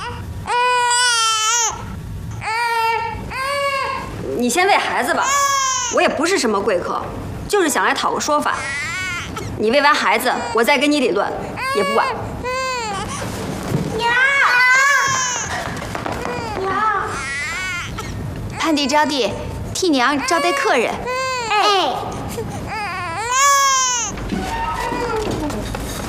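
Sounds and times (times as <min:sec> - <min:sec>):
infant girl crying loudly: 0:00.0 - 0:04.2, 0:05.0 - 0:06.1, 0:08.5 - 0:13.4, 0:14.1 - 0:19.0, 0:20.0 - 0:26.0
people talking: 0:04.2 - 0:05.4, 0:06.0 - 0:08.7, 0:09.6 - 0:12.2, 0:18.6 - 0:22.2.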